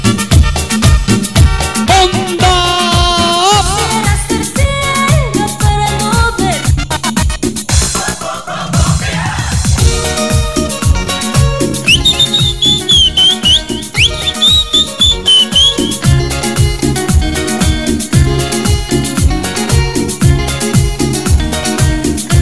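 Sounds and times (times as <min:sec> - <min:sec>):
loud pounding Latin dance track: 0:00.0 - 0:22.4
people whistling a shrill high melody: 0:11.8 - 0:16.1.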